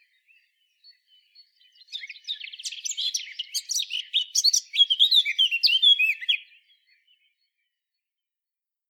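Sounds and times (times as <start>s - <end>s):
Eurasian blackcap Sylvia atricapilla twittering warble: 1.6s - 6.4s.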